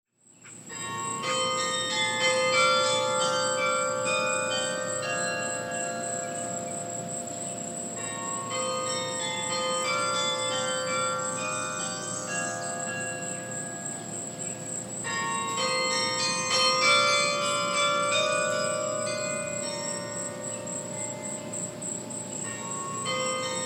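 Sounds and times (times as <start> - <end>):
carillon bells playing: 0.7 - 23.6.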